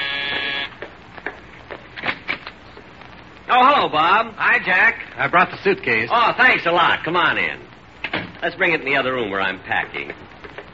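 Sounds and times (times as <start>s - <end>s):
loud harsh doorbell buzzer: 0.0s - 0.8s
speech: 3.5s - 10.3s.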